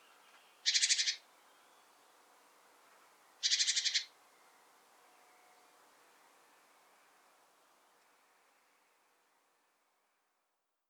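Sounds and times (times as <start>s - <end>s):
great tit Parus major harsh buzzy rattling churrs: 0.7s - 1.2s, 3.4s - 4.0s.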